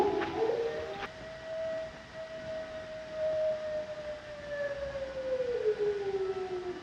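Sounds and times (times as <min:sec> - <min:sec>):
long mournful wolf howl: 0:00.0 - 0:01.1, 0:03.0 - 0:06.8
low hissing background: 0:00.0 - 0:06.8.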